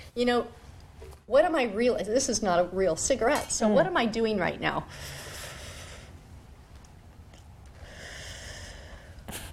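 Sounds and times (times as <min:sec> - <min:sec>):
speech: 0:00.2 - 0:00.6, 0:01.3 - 0:05.3
slow deep breathing close to the microphone: 0:04.9 - 0:06.3, 0:07.7 - 0:09.5.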